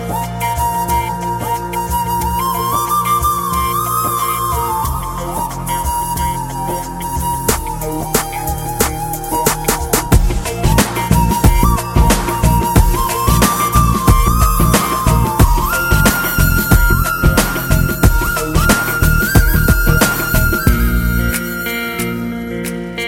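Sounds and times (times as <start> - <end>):
background flute tone: 0.0 - 22.9.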